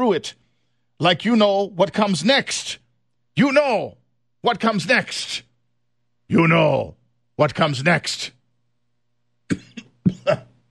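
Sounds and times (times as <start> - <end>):
speech: 0.0 - 0.4, 1.0 - 2.8, 3.4 - 5.5, 6.3 - 8.4, 10.3 - 10.5
person coughing roughly: 9.5 - 10.6.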